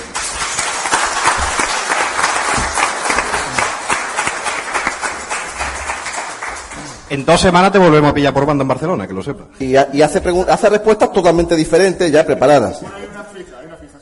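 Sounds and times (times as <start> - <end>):
crowd applauding with many hands clapping: 0.0 - 7.1
speech: 7.1 - 13.0.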